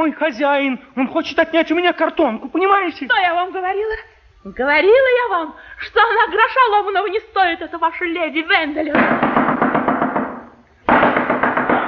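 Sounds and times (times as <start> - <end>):
speech: 0.0 - 9.6
heavy knocking on a door: 9.0 - 11.8.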